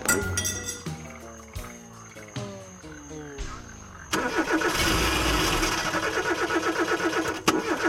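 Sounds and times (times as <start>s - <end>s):
chorus of frogs croaking in a Florida swamp: 0.0s - 7.8s
car winding down and sputtering to a halt: 4.0s - 7.8s.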